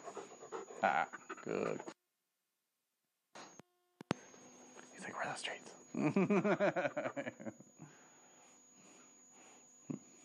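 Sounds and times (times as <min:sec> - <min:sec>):
dog panting and whimpering: 0:00.0 - 0:02.0
faint steady electronic tone: 0:00.1 - 0:01.9, 0:03.4 - 0:10.2
speech: 0:00.8 - 0:02.0, 0:05.1 - 0:07.7
laughter: 0:06.0 - 0:07.6.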